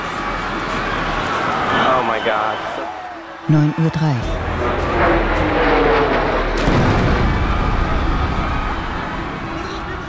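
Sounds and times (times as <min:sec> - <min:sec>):
jet roaring: 0:00.0 - 0:10.0
speech: 0:02.2 - 0:05.6
airplane crashing into skyscraper tower with rumbling explosion: 0:06.4 - 0:09.2.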